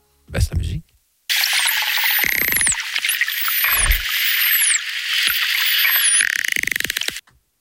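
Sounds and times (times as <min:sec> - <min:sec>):
speech: 0:00.4 - 0:00.9
high sweeping dolphin whistles: 0:01.3 - 0:07.2
rapid dolphin clicking: 0:01.4 - 0:07.2.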